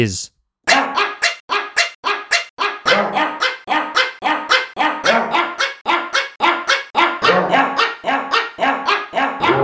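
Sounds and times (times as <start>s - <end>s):
speech: 0.0s - 0.4s
dogs barking a song melody: 0.7s - 9.6s.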